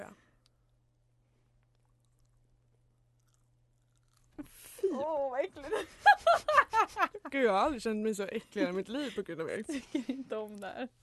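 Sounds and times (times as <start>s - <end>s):
person chewing dark chocolate: 0.3s - 4.8s
soft wet crunches and mouth sounds: 0.4s - 4.8s
speech: 4.4s - 11.0s
laughter: 5.6s - 7.3s.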